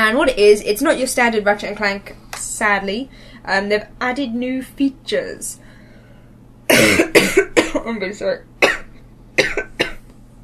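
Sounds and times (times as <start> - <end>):
speech: 0.1 - 5.6, 7.7 - 8.5
person coughing: 6.7 - 7.8, 8.6 - 10.0.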